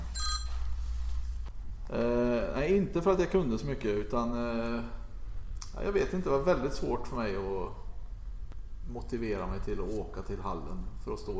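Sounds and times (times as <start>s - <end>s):
short high electronic phone ring: 0.0s - 0.6s
low steady hum: 0.0s - 11.3s
speech: 1.9s - 5.0s, 5.8s - 7.8s, 8.9s - 11.3s.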